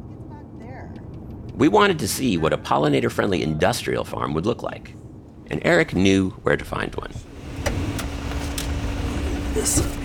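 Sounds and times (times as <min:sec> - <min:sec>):
constant road noise: 0:00.0 - 0:10.0
car driving at highway speed down the interstate toward the Willamette Valley: 0:00.9 - 0:01.9, 0:06.8 - 0:10.0
speech: 0:01.6 - 0:07.3, 0:09.6 - 0:10.0.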